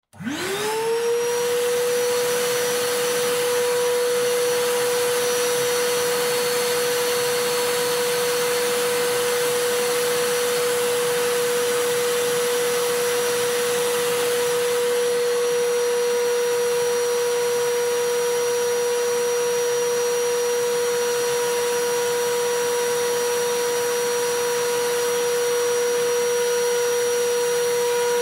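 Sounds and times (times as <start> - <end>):
vacuum cleaner: 0.0 - 28.2.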